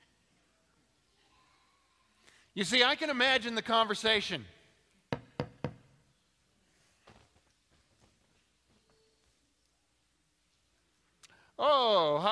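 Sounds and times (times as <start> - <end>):
speech: 2.6 - 4.6
firm knocks on a door: 5.1 - 5.8
faint shuffling: 6.6 - 11.2.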